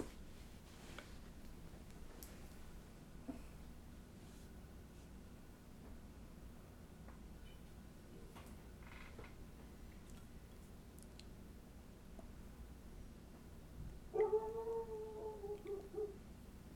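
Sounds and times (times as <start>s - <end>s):
low hiss: 0.0s - 16.7s
dogs barking outside: 14.1s - 16.2s.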